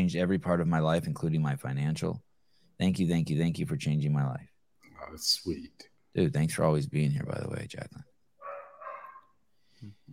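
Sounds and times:
speech: 0.0s - 8.1s
dog barking faintly with yelp and low woofs: 8.4s - 9.4s.

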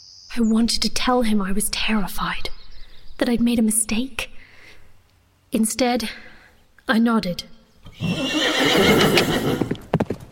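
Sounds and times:
speech: 0.0s - 2.5s, 3.2s - 4.3s, 5.5s - 6.3s, 6.9s - 9.7s
horse whinnying: 7.8s - 9.8s
horse hooves clopping as riders set off: 7.9s - 10.3s.

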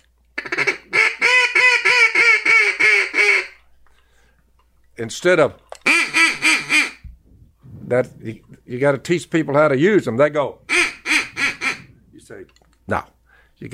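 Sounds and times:
duck call imitating mallard hen quacks: 0.4s - 3.6s, 5.9s - 7.0s, 10.7s - 11.9s
speech: 5.0s - 5.6s, 7.9s - 10.6s, 12.3s - 13.7s.

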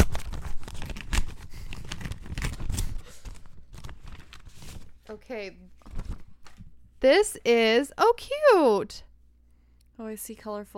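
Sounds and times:
packages being opened, paper and wrapping tearing and crinkling: 0.0s - 5.0s
speech: 5.1s - 5.8s, 7.0s - 9.1s, 10.0s - 10.7s.

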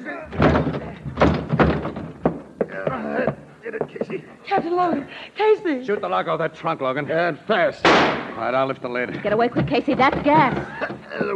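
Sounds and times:
door crashing open: 0.3s - 2.5s, 7.8s - 8.4s
heavy thuds of a door being battered open: 0.3s - 4.2s, 9.5s - 11.3s
speech: 4.6s - 11.3s.

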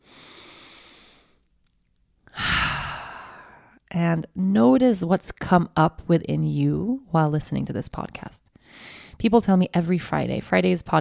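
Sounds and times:
deep breath: 0.0s - 1.4s, 2.3s - 3.8s, 8.6s - 9.2s
speech: 4.0s - 11.0s.

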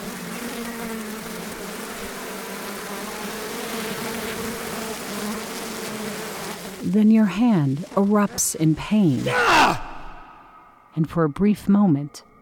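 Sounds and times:
bee swarm pouring out of its hive in a hollow tree: 0.0s - 9.2s
speech: 6.9s - 9.8s, 11.0s - 12.3s.

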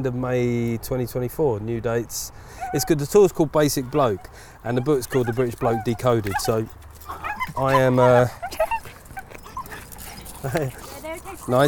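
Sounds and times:
speech: 0.0s - 8.7s, 10.4s - 11.6s
small male French bulldog whimpering: 2.6s - 3.0s, 3.9s - 11.6s.

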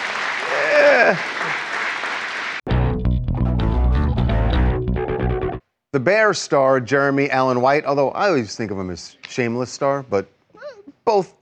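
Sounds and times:
crowd applause: 0.0s - 2.6s
crowd cheers: 0.0s - 2.6s
speech: 0.5s - 1.3s, 6.0s - 10.4s, 11.1s - 11.4s
loud bass-heavy music: 2.7s - 5.6s.

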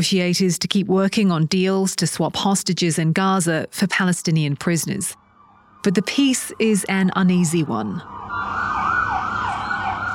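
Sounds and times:
speech: 0.0s - 5.2s, 5.8s - 8.8s
ambulance sirens wailing at a shooting scene: 5.3s - 10.1s
low rumble of road traffic: 5.8s - 10.1s.

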